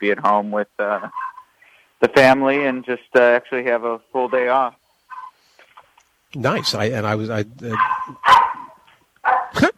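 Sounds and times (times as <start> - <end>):
speech: 0.0 - 1.2, 2.0 - 4.8, 6.3 - 8.4
miniature dachshund barking: 7.7 - 9.6.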